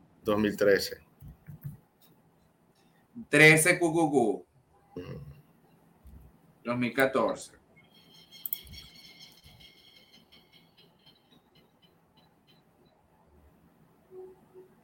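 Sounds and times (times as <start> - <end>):
speech: 0.2 - 1.0, 3.2 - 5.3, 6.6 - 7.6
small birds chirping outdoors: 7.7 - 13.0.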